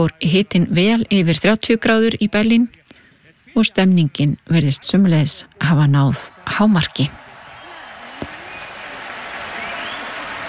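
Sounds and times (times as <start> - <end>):
speech: 0.0 - 2.8, 3.6 - 7.2
audience applauding at an outdoor summer concert: 6.4 - 10.4.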